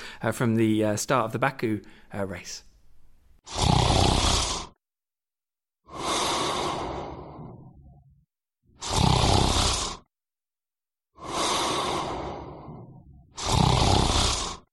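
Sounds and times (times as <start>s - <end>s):
speech: 0.2s - 2.7s, 3.4s - 4.1s
person snoring: 3.4s - 4.8s, 5.9s - 8.1s, 8.7s - 10.1s, 11.2s - 14.7s.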